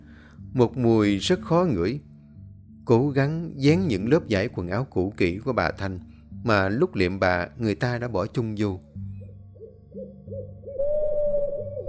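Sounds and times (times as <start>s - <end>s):
speech: 0.5s - 2.1s, 2.9s - 8.9s
owl hooting: 9.2s - 11.8s.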